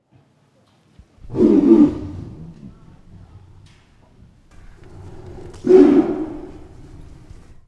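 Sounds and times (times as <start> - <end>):
Bengal tiger roaring from an outdoor tiger house in the evening at a zoo: 1.2 - 7.6.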